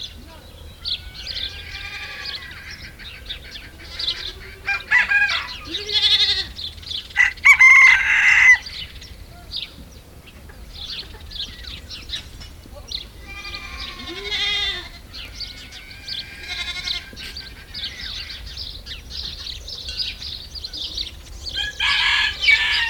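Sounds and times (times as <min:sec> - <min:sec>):
many small birds chirping and twittering: 0:00.0 - 0:22.8
goat bleating at a goat camp in France: 0:00.9 - 0:06.6, 0:13.0 - 0:18.1.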